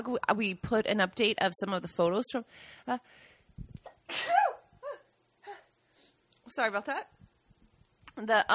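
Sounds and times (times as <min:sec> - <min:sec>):
speech: 0:00.0 - 0:04.4, 0:06.5 - 0:07.2, 0:08.2 - 0:08.5
quick catching breaths: 0:02.5 - 0:03.6
loud explosive sneeze: 0:04.1 - 0:04.6.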